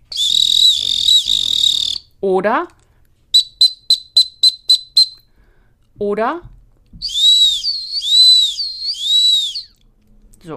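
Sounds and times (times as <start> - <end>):
shrill dog training whistle search signal blasts: 0.1 - 2.1, 3.3 - 5.2, 7.0 - 9.8
speech: 2.2 - 2.8, 6.0 - 6.5.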